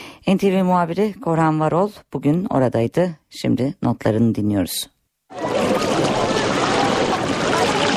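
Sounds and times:
speech: 0:00.2 - 0:05.8
water churning from pedal boats being towed: 0:05.3 - 0:07.9.

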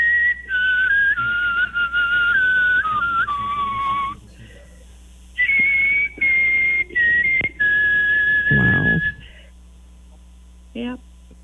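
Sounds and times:
person whistling a clear wavering melody: 0:00.0 - 0:04.2, 0:05.4 - 0:09.3.

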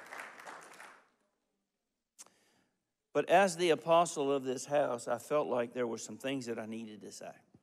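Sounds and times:
church audience clapping hands: 0:00.0 - 0:01.2
speech: 0:03.2 - 0:07.5.

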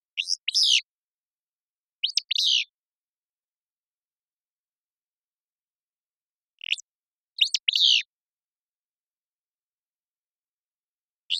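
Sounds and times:
willow flycatcher singing buzzy staccato fitz-pew phrases: 0:00.1 - 0:00.9, 0:02.0 - 0:02.8, 0:06.6 - 0:08.1.

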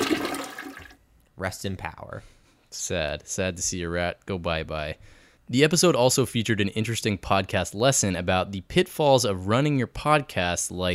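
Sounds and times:
toilet flushing: 0:00.0 - 0:01.0
speech: 0:01.4 - 0:10.9.

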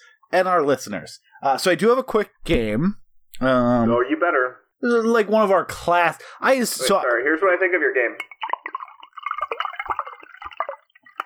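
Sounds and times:
speech: 0:00.3 - 0:08.5
wine being poured into a cup: 0:08.1 - 0:11.2.

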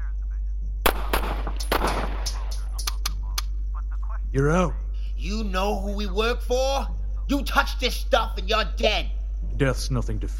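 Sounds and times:
steady low hum: 0:00.0 - 0:10.3
gunfire in a shootout: 0:00.8 - 0:02.8
speech: 0:04.4 - 0:10.3.

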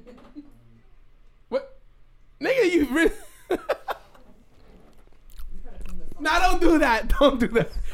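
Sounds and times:
laughter: 0:02.8 - 0:04.2
speech: 0:02.9 - 0:03.2, 0:06.8 - 0:07.8
person chewing macaroni and cheese into the microphone: 0:04.9 - 0:06.2.

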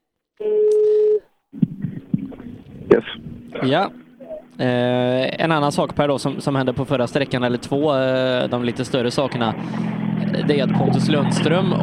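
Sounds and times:
telephone tone while calling someone back: 0:00.4 - 0:01.3
rough irregular telephone line noise with sharp bumps: 0:01.6 - 0:11.8
speech: 0:03.6 - 0:04.0, 0:04.6 - 0:11.8.

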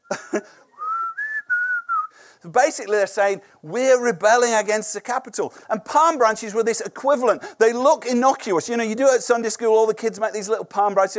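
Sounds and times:
speech: 0:00.4 - 0:00.6, 0:02.4 - 0:11.1
audience member whistling a three-part signal: 0:00.8 - 0:02.2.

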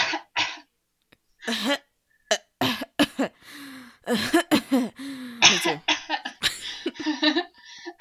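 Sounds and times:
speech: 0:01.5 - 0:01.9, 0:03.2 - 0:06.0, 0:07.0 - 0:07.5
person fake coughing: 0:01.5 - 0:07.1
hoarse exhale: 0:03.4 - 0:04.0, 0:04.9 - 0:05.5.

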